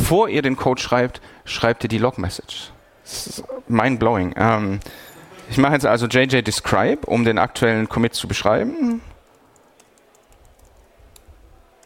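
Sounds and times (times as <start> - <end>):
speech: 0.1 - 9.1
computer keyboard typing: 8.9 - 11.8.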